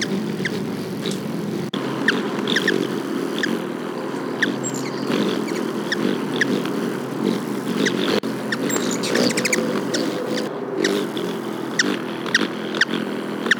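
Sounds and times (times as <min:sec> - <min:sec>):
Black-chinned Hummingbird calling with thin sharp chip notes: 0:00.0 - 0:13.5.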